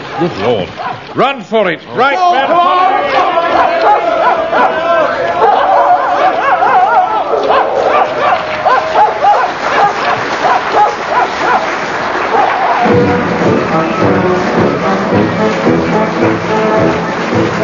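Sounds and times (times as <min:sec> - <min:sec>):
pack of dogs barking and yelping excitedly: 0:00.0 - 0:01.1, 0:03.1 - 0:12.9
speech: 0:00.2 - 0:05.4
agitated human voices shouting: 0:02.0 - 0:17.6.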